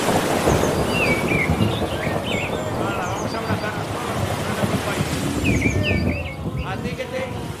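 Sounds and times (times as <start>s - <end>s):
deep rolling rumble of thunder: 0.0s - 7.5s
soft wash of ambient noise: 0.0s - 7.5s
faint bird chirps: 0.6s - 3.9s, 5.4s - 6.8s.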